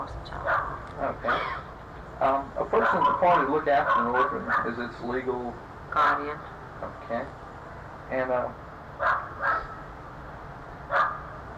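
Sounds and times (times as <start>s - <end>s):
speech: 0.0s - 7.4s, 8.1s - 9.6s
steady low hum: 0.0s - 11.5s
dog barking: 0.4s - 1.6s, 2.7s - 4.9s, 9.0s - 9.8s, 10.9s - 11.4s.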